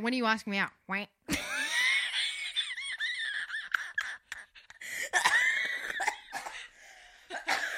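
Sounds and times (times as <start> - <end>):
speech: 0.0 - 1.6
laughter: 1.3 - 6.1
strained voiced wheezy gasps: 4.7 - 5.2, 6.4 - 7.4
person coughing: 5.0 - 7.7.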